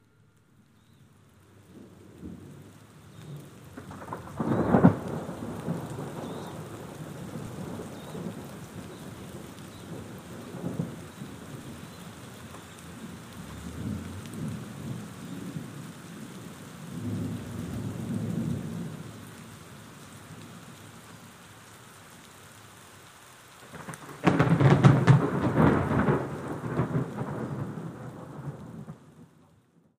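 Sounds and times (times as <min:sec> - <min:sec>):
nature soundscape: 0:00.0 - 0:29.9.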